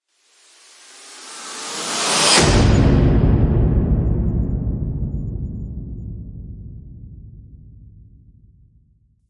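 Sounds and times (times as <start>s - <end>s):
noise rip impact: 1.0s - 8.2s.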